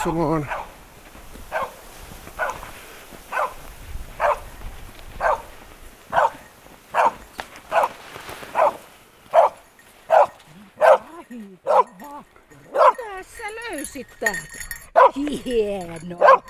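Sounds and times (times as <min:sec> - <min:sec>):
speech: 0:00.0 - 0:00.6, 0:14.0 - 0:16.4
search dog barking to mark a found target: 0:00.4 - 0:00.8, 0:01.5 - 0:02.7, 0:03.3 - 0:04.6, 0:05.2 - 0:12.1, 0:12.7 - 0:13.1, 0:14.9 - 0:15.2, 0:16.2 - 0:16.4.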